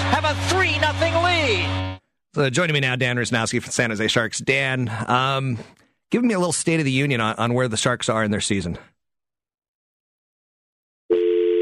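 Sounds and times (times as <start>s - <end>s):
speech: 0.1s - 9.0s
telephone dial tone after a caller drops off: 11.1s - 11.6s.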